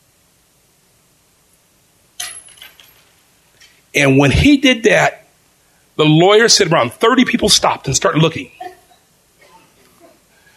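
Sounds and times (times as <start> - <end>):
coins from a pocket dropped and jingling: 2.2 - 3.1
speech: 3.9 - 5.2, 6.0 - 8.6.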